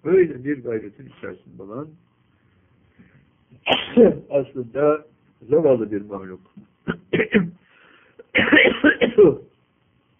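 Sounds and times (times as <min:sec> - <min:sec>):
speech: 0:00.0 - 0:02.1, 0:03.5 - 0:07.6, 0:08.4 - 0:09.5
harsh coughing: 0:03.6 - 0:04.2, 0:06.9 - 0:07.6, 0:08.2 - 0:09.4.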